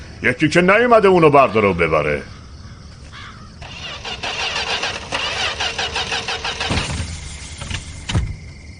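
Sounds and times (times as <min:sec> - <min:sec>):
speech: 0:00.2 - 0:02.4
car engine cranking with the starter: 0:03.6 - 0:08.1.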